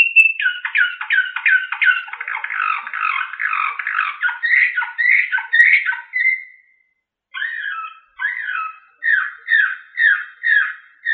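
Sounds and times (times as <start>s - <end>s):
Slavujar style canary song: 0.0s - 11.1s.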